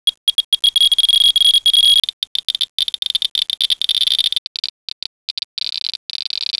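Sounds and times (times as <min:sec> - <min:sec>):
geiger counters clicking: 0:00.0 - 0:06.5.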